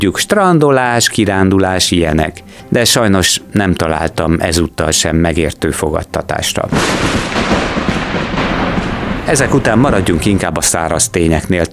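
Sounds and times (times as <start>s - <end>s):
speech: 0.0s - 8.4s, 9.3s - 11.7s
loud continuous rumbling thunder: 6.7s - 11.2s.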